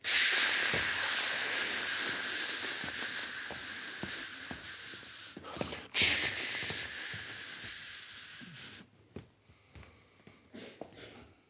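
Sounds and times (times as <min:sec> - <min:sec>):
small mouth clicks: 0:00.0 - 0:08.9
voice imitating a spray paint can hissing: 0:00.0 - 0:08.9
quiet breaths: 0:00.0 - 0:11.4.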